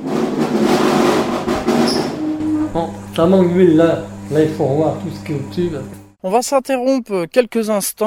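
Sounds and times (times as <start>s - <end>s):
three-phase electric motor closing an observatory dome roof shutter: 0.8s - 6.2s
low droning hum: 1.1s - 6.2s
brief high mechanical squeal: 1.7s - 4.7s
speech: 2.8s - 8.0s.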